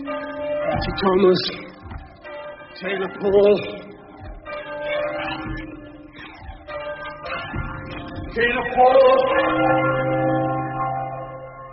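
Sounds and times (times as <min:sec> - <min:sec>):
church bell ringing in a belfry: 0:00.0 - 0:11.7
speech: 0:00.8 - 0:01.8, 0:02.8 - 0:04.0, 0:08.4 - 0:10.1.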